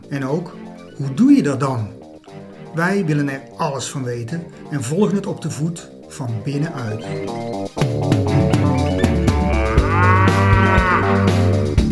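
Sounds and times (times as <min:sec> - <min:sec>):
speech: 0:00.1 - 0:02.0, 0:02.8 - 0:08.2
cows mooing on a farm: 0:09.0 - 0:11.8.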